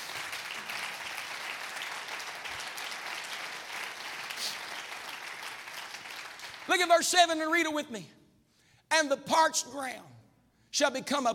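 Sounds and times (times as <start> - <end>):
audience clapping hands: 0.0 - 7.1
speech: 6.7 - 8.2, 9.0 - 10.1, 10.7 - 11.3.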